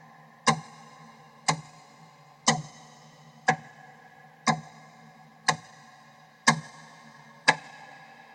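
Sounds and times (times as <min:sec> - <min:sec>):
clock ticking: 0:00.4 - 0:00.8, 0:01.4 - 0:01.8, 0:02.4 - 0:02.8, 0:03.4 - 0:03.8, 0:04.4 - 0:04.8, 0:05.4 - 0:08.0.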